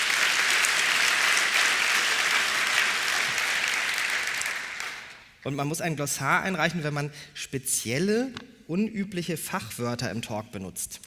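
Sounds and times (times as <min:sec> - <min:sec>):
large audience applause: 0:00.0 - 0:05.3
speech: 0:05.4 - 0:11.0.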